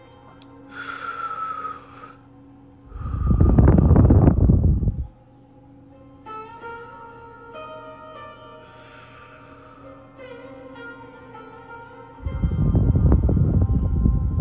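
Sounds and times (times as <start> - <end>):
faint steady hum: 0.0 - 14.3
deep breath during a guided healing session: 0.7 - 2.3, 2.9 - 5.1, 8.6 - 10.1.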